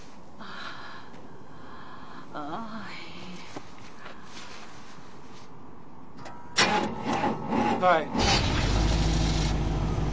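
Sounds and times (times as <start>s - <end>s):
car engine being started: 6.6s - 10.1s
speech: 7.8s - 8.3s.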